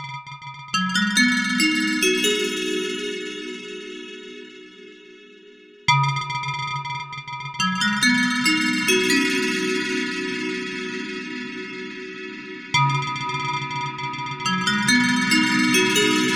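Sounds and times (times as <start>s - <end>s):
FM synthesizer bell tone: 0.9s - 5.9s, 7.7s - 16.3s.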